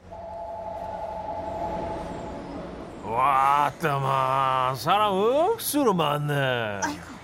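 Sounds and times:
subway train high whine: 0:00.0 - 0:04.9
subway train rolling along with a low rumble: 0:00.0 - 0:07.2
speech: 0:03.1 - 0:07.1.

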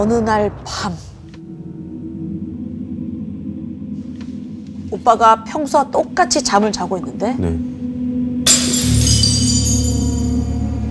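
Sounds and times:
speech: 0:00.0 - 0:01.1, 0:04.9 - 0:07.7
mirror shattering: 0:08.5 - 0:10.4
mirror shards tinkling as they settle: 0:08.5 - 0:10.5.

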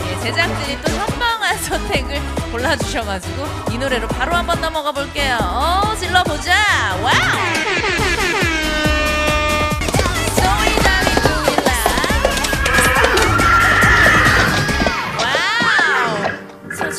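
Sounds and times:
dense busy musical backing: 0:00.0 - 0:16.9
speech: 0:00.2 - 0:08.5
elephant trumpeting: 0:07.1 - 0:16.9.

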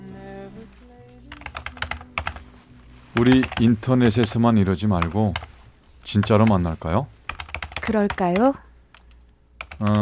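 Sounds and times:
low sustained musical hum: 0:00.0 - 0:07.3
typing on a computer keyboard: 0:01.3 - 0:02.4, 0:03.2 - 0:03.6, 0:07.3 - 0:10.0
speech: 0:03.2 - 0:07.2, 0:07.9 - 0:08.6, 0:09.8 - 0:10.0.

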